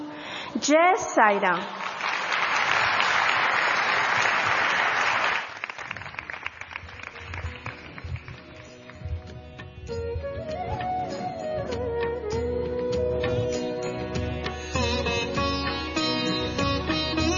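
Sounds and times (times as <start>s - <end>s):
speech: 0.6s - 1.9s
crowd applauding: 1.7s - 9.3s
instrumental music with sustained wavering melodic tones: 6.5s - 17.3s.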